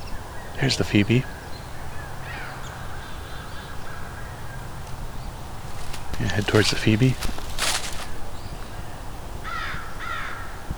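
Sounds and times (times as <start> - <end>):
speech: 0.6 - 1.4, 6.5 - 7.4
American crow cawing: 1.2 - 8.2, 9.4 - 10.6
burst of broadband noise: 5.0 - 8.4.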